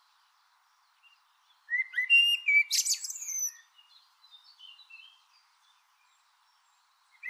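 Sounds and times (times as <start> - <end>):
Eurasian blackbird singing, Turdus merula: 1.0 - 4.0.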